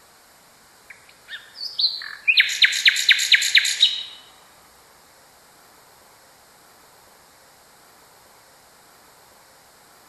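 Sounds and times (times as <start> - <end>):
common nightingale song: 0.8 - 4.6.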